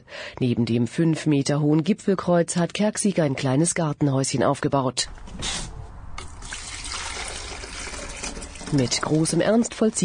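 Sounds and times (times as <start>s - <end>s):
speech: 0.3s - 5.7s, 8.7s - 10.0s
cold water poured from canister into kettles: 6.2s - 10.0s.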